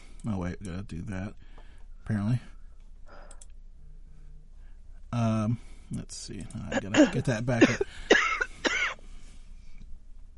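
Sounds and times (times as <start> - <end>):
quiet room hum: 0.0 - 10.3
speech: 0.2 - 2.6, 5.1 - 8.2
soft computer mouse clicks: 2.8 - 3.6.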